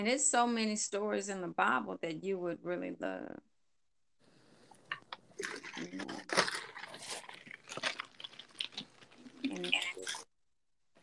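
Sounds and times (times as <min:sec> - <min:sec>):
speech: 0:00.0 - 0:03.5, 0:05.4 - 0:06.4
person drinking water: 0:04.3 - 0:10.3.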